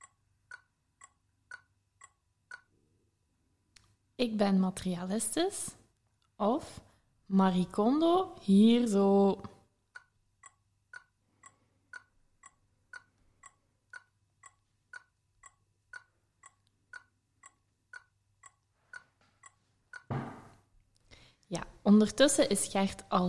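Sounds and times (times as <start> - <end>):
clock ticking: 0.0 - 2.8, 9.4 - 20.6
speech: 4.2 - 5.8, 6.4 - 9.5, 22.0 - 23.2.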